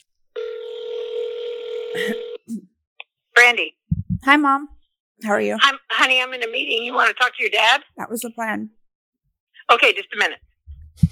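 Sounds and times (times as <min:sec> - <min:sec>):
house phone steady electronic tone: 0:00.4 - 0:02.4
speech: 0:02.0 - 0:02.7, 0:03.5 - 0:08.8, 0:09.7 - 0:11.1.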